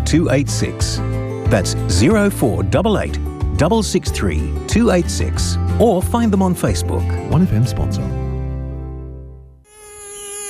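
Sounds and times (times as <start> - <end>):
speech: 0.1 - 8.2
mosquito buzzing during a mosquito plague: 9.6 - 10.4.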